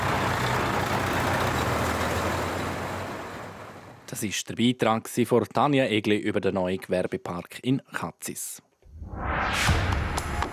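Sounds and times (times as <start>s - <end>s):
heavy truck engine rumbling: 0.0s - 4.1s
speech: 4.1s - 10.0s.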